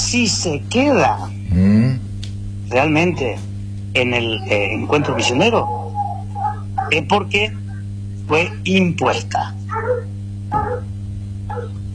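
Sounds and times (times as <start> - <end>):
steady low electrical hum: 0.0 - 11.9
speech: 0.1 - 2.1, 2.7 - 5.9, 6.9 - 7.6, 8.3 - 10.1
dog barking: 4.5 - 7.1, 9.7 - 10.9, 11.5 - 11.8.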